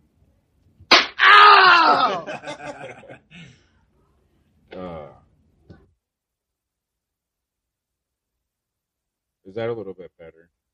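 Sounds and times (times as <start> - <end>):
slap sound effect from soundboard: 0.9 - 1.2
laughter: 1.9 - 3.5
speech: 9.6 - 10.6.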